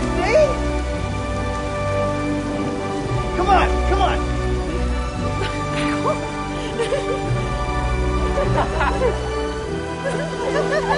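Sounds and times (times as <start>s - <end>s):
steady dense rainfall: 0.0s - 10.9s
laughter: 5.4s - 7.4s, 8.2s - 10.9s.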